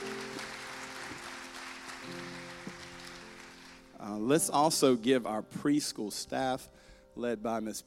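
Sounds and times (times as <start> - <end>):
audience applause for graduates: 0.0 - 3.9
speech: 4.0 - 7.8.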